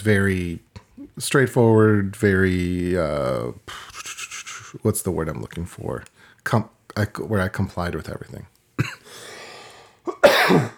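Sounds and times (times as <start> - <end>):
speech: 0.0 - 3.9, 4.7 - 9.0, 10.0 - 10.7
person coughing: 8.8 - 9.1, 10.1 - 10.7.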